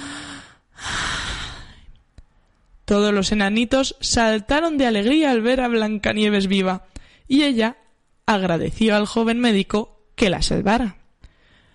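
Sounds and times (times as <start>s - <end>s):
young woman gasping and breathing again after choking on a piece of apple: 0.0s - 2.0s
speech: 2.9s - 11.0s.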